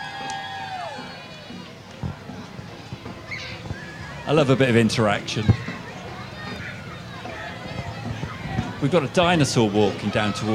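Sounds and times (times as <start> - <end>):
crowd cheering and shouting outdoors for a dance troupe: 0.0 - 10.5
speech: 4.3 - 5.7, 8.8 - 10.5.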